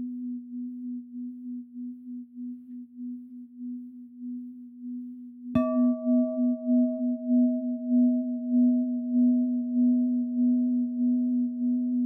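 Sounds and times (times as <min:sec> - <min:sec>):
Tibetan singing bowl resonating with low hum: 0:00.0 - 0:12.0
Tibetan singing bowl strike ringing: 0:05.5 - 0:12.0.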